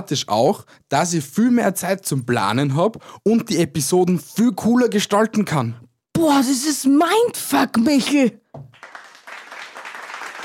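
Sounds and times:
speech: 0:00.0 - 0:08.9
crowd applause: 0:08.7 - 0:10.4.

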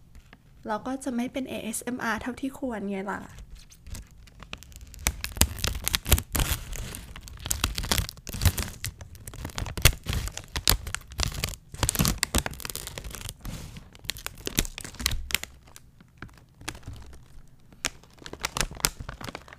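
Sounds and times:
speech: 0:00.6 - 0:03.4
plastic snack bag crinkling and tearing: 0:03.3 - 0:19.5
scissors cutting open a pink plastic bag of paprika-flavored snacks: 0:03.9 - 0:17.2.

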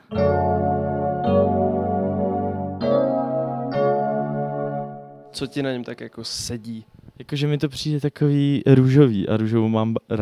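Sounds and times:
Yamaha DX7 synthesizer patch playing sustained chords: 0:00.0 - 0:05.8
speech: 0:05.4 - 0:10.2.

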